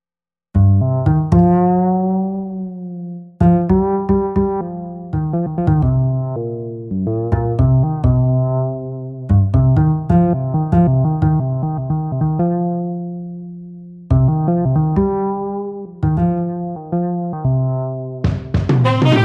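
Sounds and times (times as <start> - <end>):
bass: 0.5 - 19.2
brass: 18.8 - 19.2.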